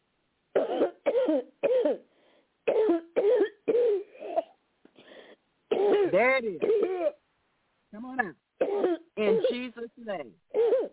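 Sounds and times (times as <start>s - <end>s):
person coughing harshly: 0.6s - 2.0s, 2.7s - 4.6s, 5.7s - 7.2s, 8.6s - 9.7s, 10.6s - 10.9s
faint breath: 2.0s - 2.6s, 4.9s - 5.5s
speech: 6.2s - 7.1s.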